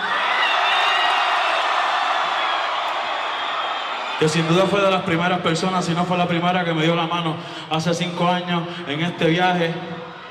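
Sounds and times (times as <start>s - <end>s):
large concert crowd in Puerto Rico cheering and applauding: 0.0s - 5.7s
speech: 4.2s - 10.1s.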